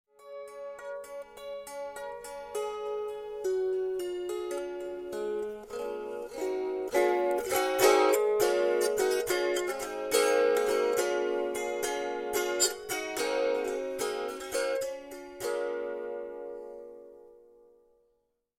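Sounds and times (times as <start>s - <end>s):
steel-stringed kantele: 0.1s - 18.2s.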